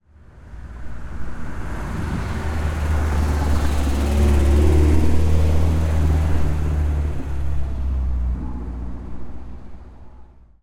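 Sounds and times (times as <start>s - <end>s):
old car passing by: 1.1s - 10.4s.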